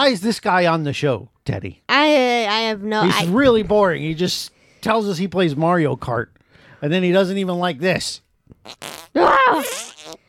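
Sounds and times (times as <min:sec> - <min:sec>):
speech: 0:00.0 - 0:10.2
fart noise: 0:08.6 - 0:10.2.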